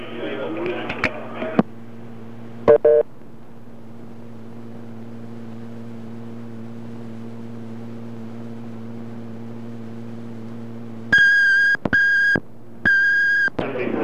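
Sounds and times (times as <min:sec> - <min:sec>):
steady low telephone line hum: 0:00.0 - 0:14.0
answering machine short electronic blip: 0:02.7 - 0:03.0, 0:11.1 - 0:13.5.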